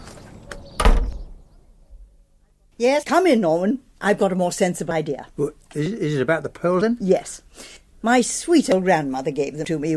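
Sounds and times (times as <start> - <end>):
front door swinging shut: 0.5 - 1.4
speech: 2.8 - 9.9.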